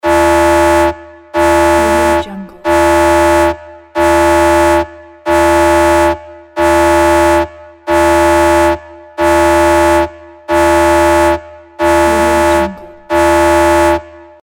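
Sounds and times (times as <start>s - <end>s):
sci fi ship alarm: 0.0s - 14.2s
industrial sounds: 12.0s - 13.3s.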